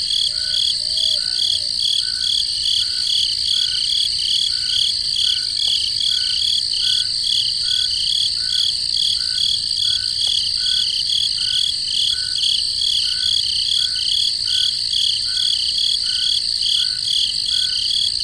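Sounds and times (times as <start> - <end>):
crickets chirping in the forest at night: 0.0 - 18.2.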